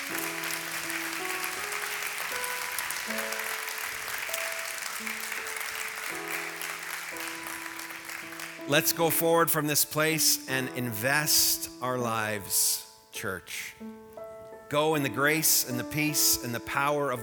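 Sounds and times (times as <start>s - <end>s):
audience applauding: 0.0s - 9.2s
organ chords: 0.0s - 16.8s
speech: 8.7s - 13.8s, 14.7s - 17.2s.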